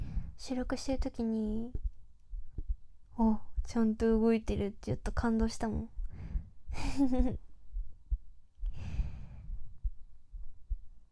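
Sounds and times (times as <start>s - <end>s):
soft low human heartbeat thumps: 0.0s - 11.1s
speech: 0.4s - 1.8s, 3.2s - 5.9s, 6.7s - 7.4s
slow breathy exhale: 8.7s - 9.6s.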